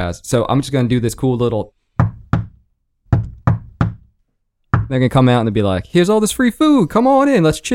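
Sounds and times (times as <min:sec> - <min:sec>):
speech: 0:00.0 - 0:01.8, 0:04.9 - 0:07.7
sharp knocks on a door: 0:02.0 - 0:04.1, 0:04.7 - 0:05.0.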